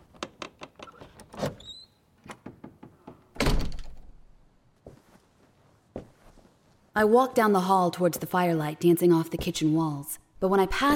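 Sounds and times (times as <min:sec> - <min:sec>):
door thudding shut: 0:03.4 - 0:04.0
soft bumps of things settling: 0:04.8 - 0:06.8
speech: 0:07.0 - 0:10.9.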